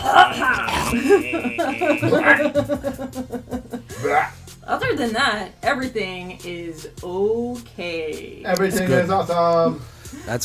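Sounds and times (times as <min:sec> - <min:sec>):
person clearing throat: 0:00.0 - 0:02.6
hacking cough: 0:00.0 - 0:03.2
laughter: 0:00.0 - 0:04.3
speech: 0:00.9 - 0:04.3, 0:04.9 - 0:10.4.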